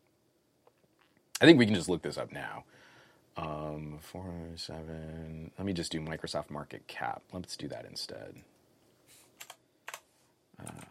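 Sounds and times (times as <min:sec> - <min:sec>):
speech: 0:01.4 - 0:08.5, 0:10.6 - 0:10.8
typing a search on a computer keyboard: 0:09.4 - 0:10.0.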